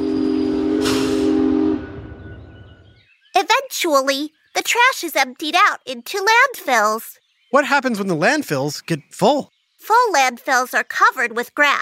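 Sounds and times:
trash-hauling train whistle: 0:00.0 - 0:02.7
rumbling rail noise of a trash-hauling train: 0:00.0 - 0:03.1
hissing steam of a train: 0:00.8 - 0:01.4
speech: 0:03.8 - 0:11.7.

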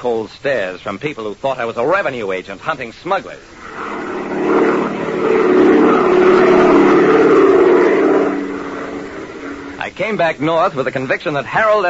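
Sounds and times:
speech: 0:00.0 - 0:03.9, 0:05.2 - 0:05.5, 0:10.0 - 0:11.8
propeller airplane engine droning in flight: 0:03.4 - 0:10.0.

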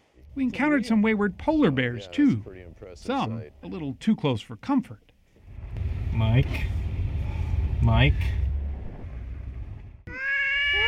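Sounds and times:
soft rumbling noise: 0:00.0 - 0:10.1
speech: 0:00.4 - 0:05.1, 0:06.2 - 0:06.8, 0:07.8 - 0:08.4
cat meowing: 0:10.1 - 0:10.8.

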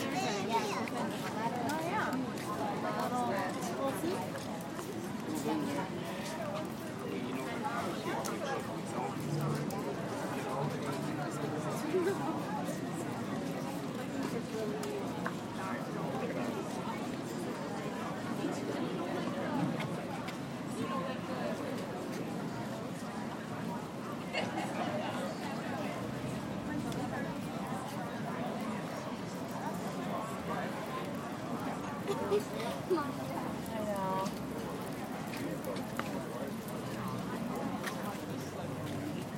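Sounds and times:
outdoor crowd babble at a crowded art fair in Madison Wisconsin USA: 0:00.0 - 0:39.3.

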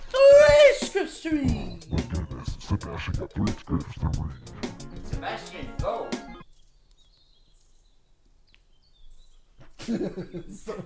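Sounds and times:
speech: 0:01.2 - 0:02.0, 0:02.7 - 0:06.2, 0:09.8 - 0:10.8
faint birds chirping: 0:01.3 - 0:05.3, 0:06.3 - 0:10.8
laughter: 0:01.4 - 0:04.7.

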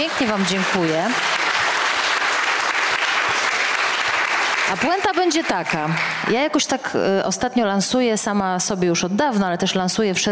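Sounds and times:
speech: 0:00.0 - 0:01.4, 0:04.7 - 0:10.2
audience applause: 0:00.0 - 0:06.4.

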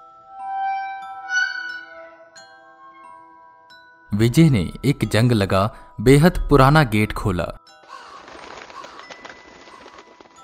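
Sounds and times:
speech: 0:04.2 - 0:07.6
crows cawing: 0:07.8 - 0:10.4
crows fluttering and rustling as they scatter: 0:07.9 - 0:10.4.

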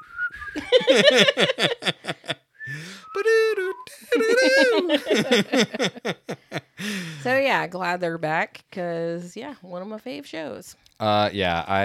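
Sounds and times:
person whistling a lively bouncy sports theme tune: 0:00.0 - 0:00.7, 0:02.6 - 0:04.8
speech: 0:00.5 - 0:03.6, 0:04.8 - 0:06.2, 0:07.2 - 0:11.8
laughter: 0:00.6 - 0:07.4.

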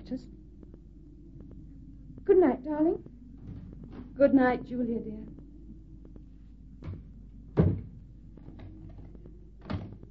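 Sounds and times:
speech: 0:00.1 - 0:00.4, 0:02.3 - 0:03.1, 0:04.2 - 0:05.3
door shutting with a thud: 0:07.6 - 0:08.0.

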